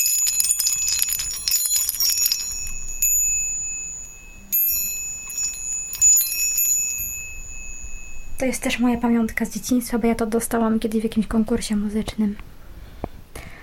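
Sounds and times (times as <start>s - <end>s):
small decorative bells on a bird ornament jingling: 0.0s - 10.2s
speech: 8.4s - 12.5s.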